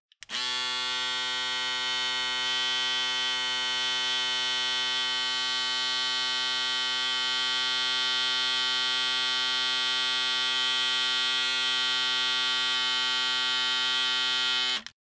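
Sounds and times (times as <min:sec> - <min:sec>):
razor: 0:00.2 - 0:15.0.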